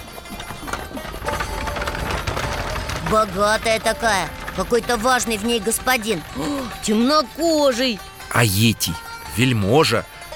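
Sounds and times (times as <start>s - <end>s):
horse hooves clip-clopping of a horse-drawn chariot: 0.0s - 7.5s
rough rumbling noise of a horse-drawn chariot: 0.0s - 8.3s
speech: 3.1s - 10.2s.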